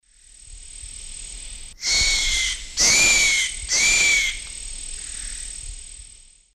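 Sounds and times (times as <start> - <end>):
Piculus chrysochloros incomplete call in Eastern Lowlands of South America: 1.8 - 4.4.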